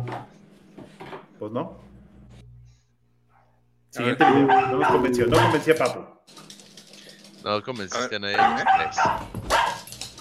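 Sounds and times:
speech: 0:01.4 - 0:01.9, 0:03.9 - 0:06.4, 0:07.4 - 0:09.4
dog barking and yelping: 0:04.2 - 0:05.6, 0:08.4 - 0:09.9.

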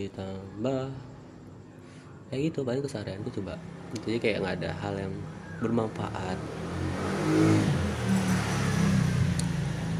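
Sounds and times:
speech: 0:00.0 - 0:01.1, 0:02.3 - 0:07.8
motorcycle engine droning past with slight revving: 0:03.3 - 0:09.9.

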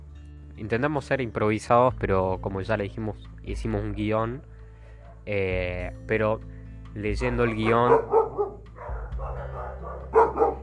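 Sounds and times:
speech: 0:00.6 - 0:04.6, 0:05.2 - 0:08.2
female pet dog barking at night: 0:04.9 - 0:05.3, 0:07.4 - 0:10.6.

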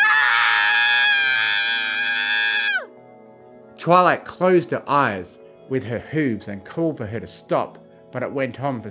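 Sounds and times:
woman screaming high-pitched: 0:00.0 - 0:02.9
speech: 0:03.8 - 0:08.8.

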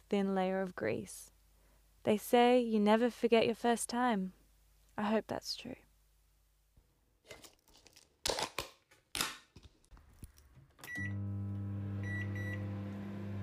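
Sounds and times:
speech: 0:00.1 - 0:01.3, 0:02.0 - 0:04.4, 0:05.0 - 0:05.8
microwave oven heating a lidded food container with electric hum: 0:10.8 - 0:13.4.

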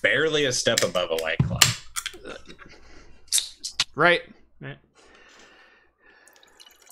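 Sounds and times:
speech: 0:00.0 - 0:01.8, 0:04.0 - 0:04.8
canned red beer poured into a glass: 0:06.2 - 0:06.8.

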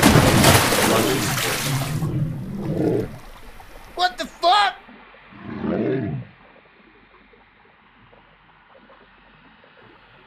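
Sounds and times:
crocodile bursting out of water with a loud splash: 0:00.0 - 0:04.2
low rumbling water settling: 0:00.0 - 0:10.2.

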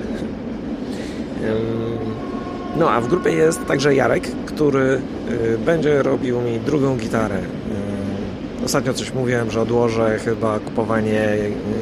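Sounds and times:
steady whining tone of a passing train: 0:00.0 - 0:06.9
train rolling past with a low rumble: 0:00.0 - 0:10.0
speech: 0:01.4 - 0:01.9, 0:02.8 - 0:07.8, 0:08.6 - 0:11.8.

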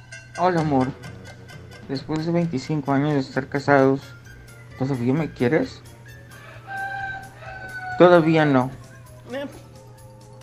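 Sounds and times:
speech: 0:00.4 - 0:01.1, 0:01.9 - 0:04.2, 0:04.8 - 0:05.9, 0:08.0 - 0:09.6
rooster crowing: 0:06.2 - 0:08.8.

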